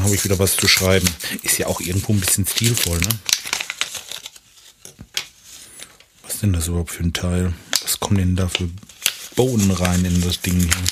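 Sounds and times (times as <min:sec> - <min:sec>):
speech: 0:00.0 - 0:03.4, 0:06.4 - 0:10.9
packaging crinkling and tearing as a fountain pen is unwrapped: 0:00.0 - 0:04.9, 0:07.7 - 0:10.9.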